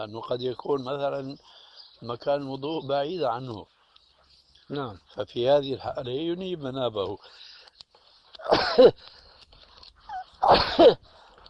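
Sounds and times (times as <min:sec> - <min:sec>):
speech: 0:00.0 - 0:03.8, 0:04.7 - 0:07.5, 0:08.4 - 0:09.2, 0:10.5 - 0:11.1
person sneezing: 0:08.4 - 0:09.0, 0:10.4 - 0:11.0.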